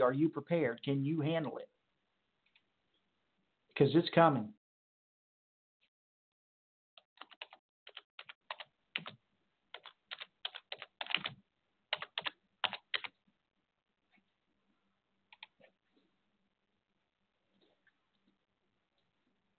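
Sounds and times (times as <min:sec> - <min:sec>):
speech: 0:00.0 - 0:01.8, 0:03.8 - 0:04.6
rapid keystrokes on a computer keyboard: 0:07.1 - 0:13.1, 0:15.3 - 0:15.6.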